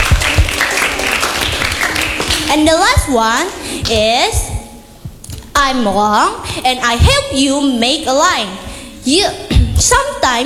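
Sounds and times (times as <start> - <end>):
group applauding in a classroom: 0.0 - 2.6
speech: 2.5 - 4.5, 5.6 - 10.4.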